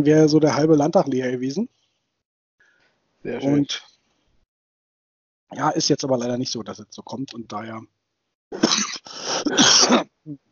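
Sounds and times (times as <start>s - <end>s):
speech: 0.0s - 1.8s, 3.2s - 3.9s, 5.5s - 10.5s
harsh rasping coughing fit: 8.5s - 10.2s.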